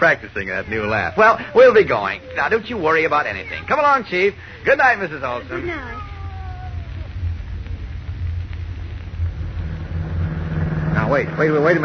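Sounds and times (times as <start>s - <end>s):
speech: 0.0s - 6.1s, 11.1s - 11.8s
faint whine: 0.0s - 11.8s
noise: 0.0s - 11.8s
car engine rumble while driving at night: 7.1s - 11.8s.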